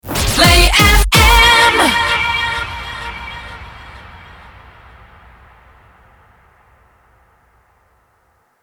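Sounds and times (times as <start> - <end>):
rapid fire music loop in B flat minor: 0.0 - 3.4.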